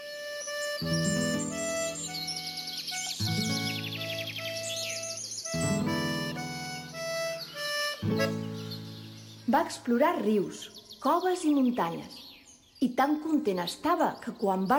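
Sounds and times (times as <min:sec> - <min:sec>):
sustained musical backdrop of held tones: 0:00.0 - 0:09.4
birdsong in a forest: 0:00.0 - 0:14.7
speech: 0:09.5 - 0:12.2, 0:12.8 - 0:14.7.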